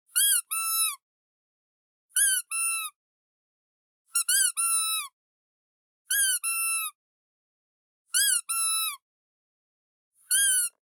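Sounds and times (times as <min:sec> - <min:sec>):
duck toy: 0:00.1 - 0:01.0, 0:02.2 - 0:03.0, 0:04.1 - 0:05.1, 0:06.1 - 0:07.0, 0:08.2 - 0:09.0, 0:10.2 - 0:10.8.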